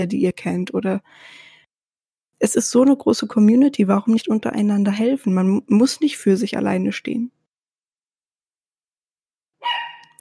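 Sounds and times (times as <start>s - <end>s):
speech: 0.0s - 1.5s, 2.4s - 7.4s
dog barking: 9.6s - 10.1s.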